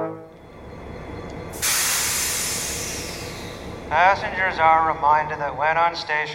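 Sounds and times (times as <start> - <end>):
train idling at a station platform: 0.2 - 6.3
train steam or air release hissing: 1.5 - 3.9
speech: 3.9 - 6.3.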